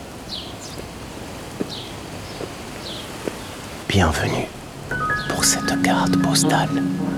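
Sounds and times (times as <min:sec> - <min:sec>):
Mediterranean wind rustling through foliage: 0:00.0 - 0:04.8
speech: 0:03.9 - 0:04.6, 0:05.4 - 0:07.1.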